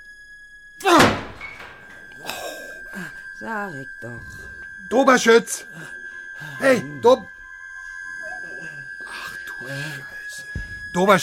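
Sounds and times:
door forcefully shoved open: 0.8 - 2.2
speech: 3.4 - 7.4, 9.6 - 10.1, 10.9 - 11.2.

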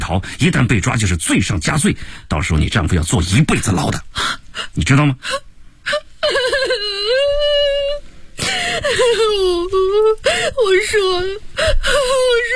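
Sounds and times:
speech: 0.1 - 6.9, 8.8 - 12.5
woman crying: 4.2 - 12.5.

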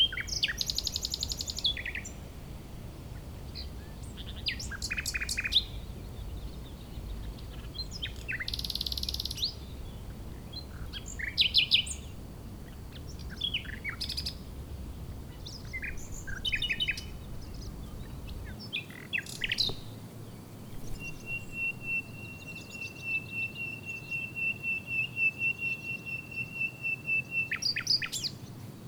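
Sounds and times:
fairly strong west wind: 0.0 - 22.4
wild common nightingale singing in scrub in breeding season: 0.0 - 28.6.

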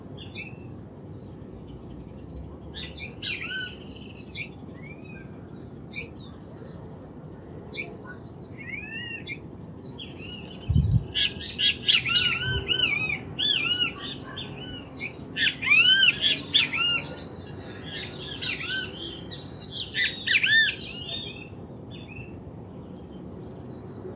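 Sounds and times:
several great kiskadees calling near a stream: 11.1 - 21.3.

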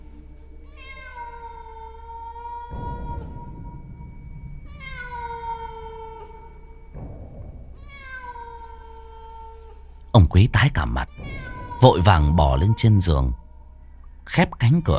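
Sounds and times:
low rough noise: 0.0 - 14.9
white-furred cat meowing mournfully: 0.6 - 4.1, 4.7 - 6.8, 7.8 - 9.9, 11.0 - 13.5
speech: 10.2 - 13.4, 14.3 - 14.9.

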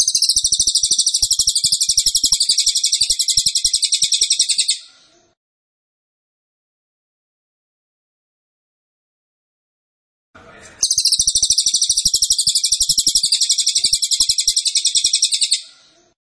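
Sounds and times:
cililin song, loud high buzzy trill: 0.0 - 4.8, 10.8 - 15.6.

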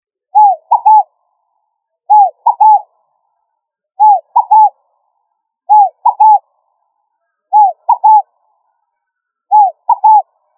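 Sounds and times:
pigeon of family Columbidae cooing: 0.4 - 1.1, 2.1 - 2.9, 4.0 - 4.8, 5.7 - 6.4, 7.5 - 8.3, 9.5 - 10.3.

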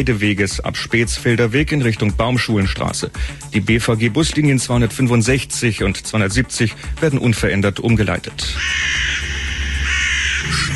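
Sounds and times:
speech: 0.0 - 9.2
black crows cawing: 8.6 - 10.7.

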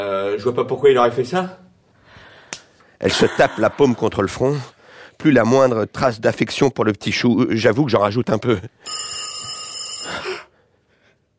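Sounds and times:
speech: 0.0 - 1.6, 3.0 - 9.2
laughter: 3.0 - 4.3
shrill electronic telephone ringing at night: 8.8 - 10.2.

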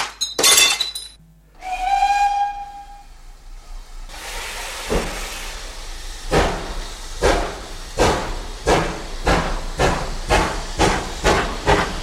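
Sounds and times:
glass bottle smashing: 0.0 - 1.2
steam whistle: 1.6 - 3.4
departing steam locomotive hissing and chuffing: 1.6 - 12.0.

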